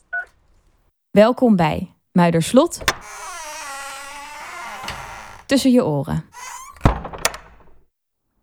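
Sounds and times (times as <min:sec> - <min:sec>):
speech: 0:01.2 - 0:03.3, 0:05.5 - 0:06.5
door creaking: 0:02.6 - 0:07.8
heavy thunk from a door latch at Muiderslot castle: 0:02.8 - 0:05.6, 0:06.3 - 0:07.8.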